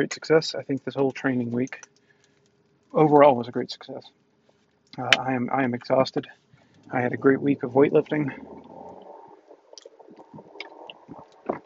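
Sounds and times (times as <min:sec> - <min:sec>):
speech: 0:00.0 - 0:01.9, 0:02.9 - 0:04.2, 0:05.0 - 0:08.8
person gulping and swallowing water: 0:08.0 - 0:11.6.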